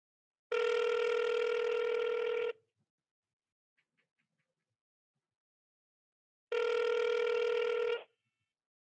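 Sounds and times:
outgoing phone call electronic ring tones: 0.5s - 2.6s, 6.5s - 8.2s.

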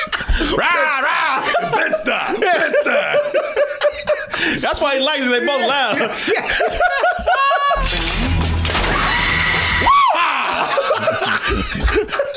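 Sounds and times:
laughter: 0.0s - 12.3s
speech: 0.4s - 2.9s, 4.6s - 7.1s
two people screaming in a scream-off contest: 8.8s - 11.0s.

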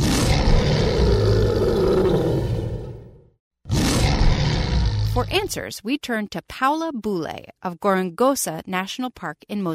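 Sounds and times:
lion roaring: 0.0s - 5.3s
speech: 5.3s - 9.7s.

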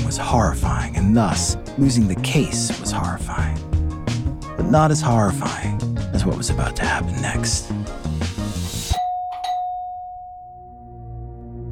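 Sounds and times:
busy music: 0.0s - 9.0s
speech: 0.1s - 3.7s, 4.6s - 8.0s
doorbell chiming: 8.9s - 11.3s.

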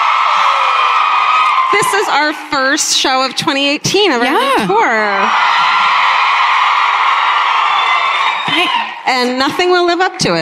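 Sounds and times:
live crowd screaming and cheering with shrieks and whoops: 0.0s - 2.6s, 5.0s - 9.1s
speech: 1.8s - 5.8s, 8.6s - 10.4s.

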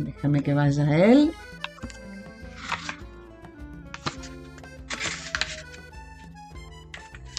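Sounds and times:
speech: 0.0s - 1.5s
soft instrumental music: 0.0s - 7.3s
pages of a book of love poems being flipped: 1.6s - 3.1s, 3.9s - 6.2s, 6.9s - 7.3s.

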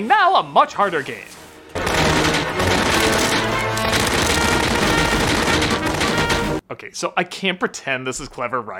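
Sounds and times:
speech: 0.0s - 1.4s, 6.7s - 8.7s
machine gun fire in a film scene: 1.8s - 6.6s.

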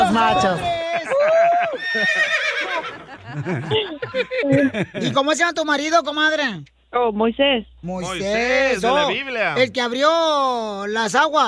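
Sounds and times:
laughter: 0.0s - 5.4s
speech: 0.1s - 11.4s
horse neighing: 1.8s - 3.1s.

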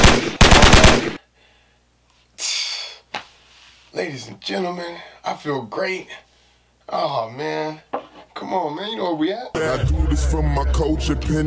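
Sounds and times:
gunshots: 0.0s - 1.2s
speech: 3.9s - 6.3s, 6.9s - 11.4s.

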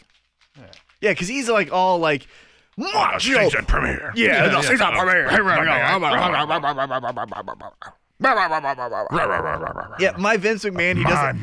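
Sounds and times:
speech: 0.6s - 11.4s
laughter: 4.2s - 11.4s
voice imitating a growl: 7.5s - 10.2s.

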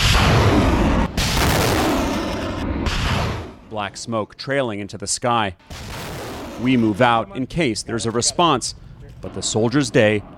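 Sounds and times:
truck-mounted rocket launcher firing rockets in an open field: 0.0s - 3.7s, 5.6s - 7.4s
speech: 3.8s - 6.0s, 6.6s - 10.3s.

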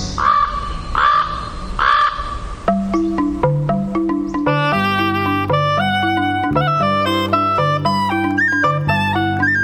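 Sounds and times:
crow cawing: 0.1s - 2.6s
steady tonal music: 2.6s - 9.6s.

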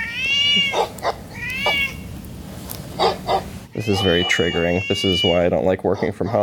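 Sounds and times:
cat meowing: 0.0s - 2.1s, 3.3s - 5.7s
speech: 3.8s - 6.4s.

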